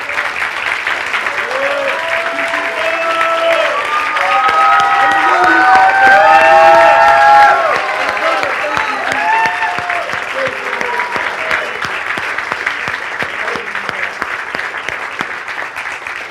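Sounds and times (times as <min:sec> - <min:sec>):
large crowd applauding: 0:00.0 - 0:16.3
crowd whooping and cheering: 0:01.2 - 0:12.0.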